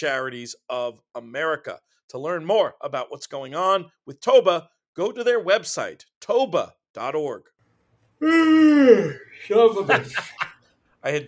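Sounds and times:
speech: 0.0 - 7.5, 8.2 - 11.2
person yawning: 8.2 - 10.2
laughter: 9.5 - 10.6.

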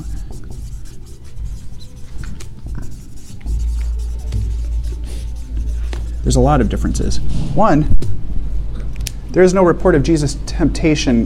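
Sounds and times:
writing by hand: 0.0 - 6.3
low hum: 0.0 - 9.4
speech: 6.2 - 8.1, 9.3 - 11.2.

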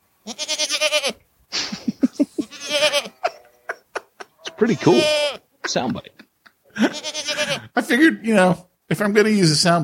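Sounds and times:
goat bleating: 0.2 - 1.2, 2.4 - 5.5, 6.8 - 7.8
laughter: 1.6 - 5.0, 5.6 - 7.7
speech: 4.6 - 6.2, 6.8 - 7.2, 7.8 - 9.8.

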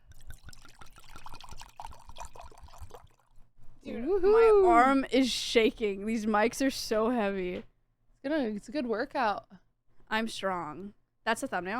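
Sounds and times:
wine pouring into a glass: 0.0 - 3.4
speech: 3.9 - 11.7.

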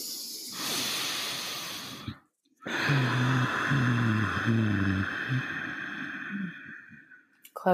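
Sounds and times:
ujjayi breathing through the nose with the lips sealed: 0.0 - 7.2.

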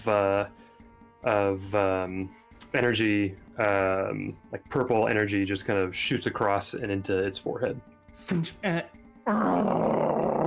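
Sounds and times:
speech: 0.0 - 0.6, 1.2 - 10.3
person imitating a creature growling during a tabletop fantasy game: 9.3 - 10.4.

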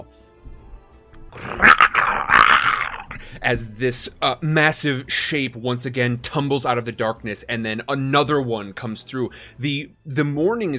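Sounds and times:
large beast growling and howling in a snowy pine forest: 1.3 - 3.4
speech: 3.5 - 10.7.

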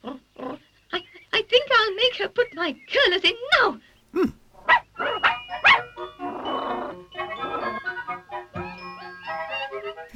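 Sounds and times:
dog snarling and growling: 0.0 - 0.6, 6.2 - 7.8
speech: 2.2 - 4.4
dog barking sharply: 4.6 - 5.9.

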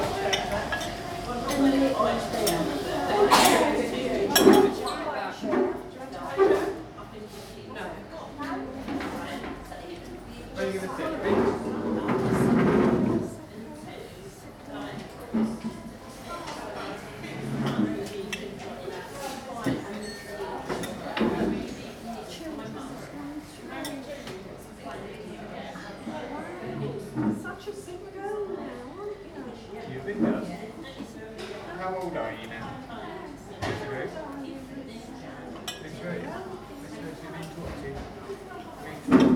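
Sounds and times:
murmur of several voices in a small English tea room: 0.0 - 39.3
dishes and cutlery clinking in a tea room: 4.3 - 5.0, 19.6 - 21.4.

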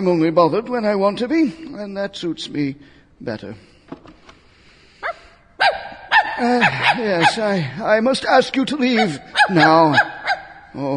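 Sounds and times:
speech: 0.0 - 4.1, 6.4 - 10.1, 10.8 - 10.9
dog barking: 5.0 - 7.4, 9.0 - 10.6.

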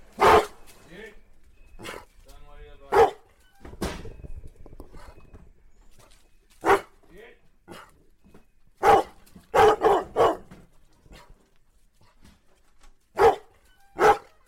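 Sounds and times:
Doberman-Bloodhound cross pack hounds barking: 0.1 - 0.7, 1.8 - 2.2, 2.8 - 3.3, 6.6 - 7.0, 7.7 - 8.0, 8.8 - 11.4, 13.1 - 14.4.

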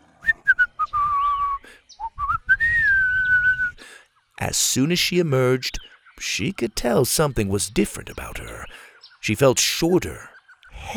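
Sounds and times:
person whistling a short tune: 0.2 - 3.8
speech: 4.5 - 10.3.

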